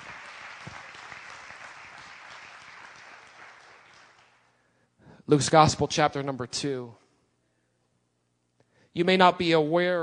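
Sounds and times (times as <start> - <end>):
congregation applauding: 0.0 - 4.6
speech: 5.3 - 7.0, 9.0 - 10.0.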